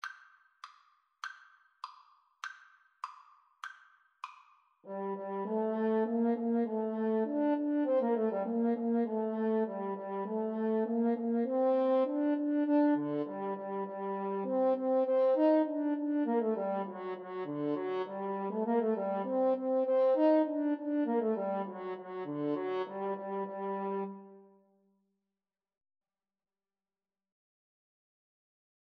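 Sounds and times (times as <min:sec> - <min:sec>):
French horn in a duet with bassoon: 0:04.9 - 0:24.5
bassoon in a duet with French horn: 0:04.9 - 0:24.6.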